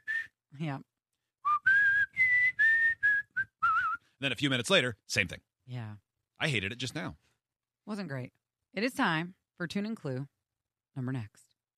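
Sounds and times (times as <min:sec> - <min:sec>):
person whistling a short tune: 0:00.0 - 0:00.4, 0:01.4 - 0:04.1
speech: 0:00.6 - 0:00.9, 0:04.2 - 0:07.3, 0:07.9 - 0:10.4, 0:11.0 - 0:11.5.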